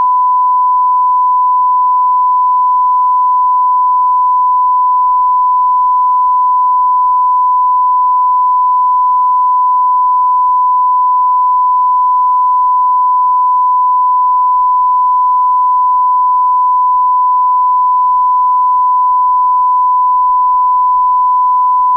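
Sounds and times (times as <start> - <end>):
94dB STI calibration test signal: 0.0 - 21.9.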